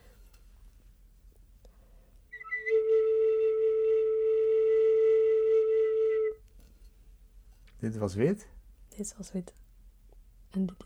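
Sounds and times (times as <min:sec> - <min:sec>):
clay whistle blown in a long low note: 0:02.3 - 0:06.4
speech: 0:07.8 - 0:09.6, 0:10.6 - 0:10.8.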